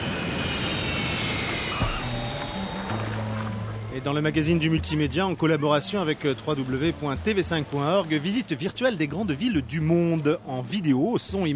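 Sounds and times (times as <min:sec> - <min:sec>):
airplane about to land: 0:00.0 - 0:08.3
low thump: 0:01.8 - 0:03.8
speech: 0:04.0 - 0:11.5.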